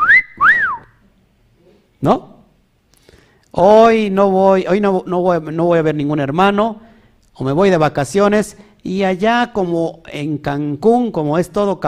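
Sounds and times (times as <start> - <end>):
loud two-part catcall wolf whistle: 0.0 - 1.0
speech: 2.0 - 2.3, 3.6 - 11.8.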